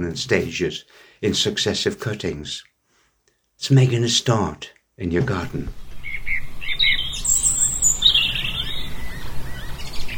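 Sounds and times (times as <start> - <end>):
speech: 0.0 - 2.7, 3.6 - 5.8
birds chirping and trilling in gardens and fields in Northumberland: 5.7 - 10.1.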